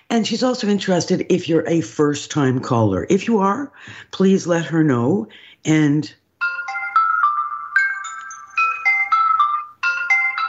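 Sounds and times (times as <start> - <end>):
speech: 0.1 - 6.2
bright electronic chimes for callers getting on air: 6.4 - 10.4.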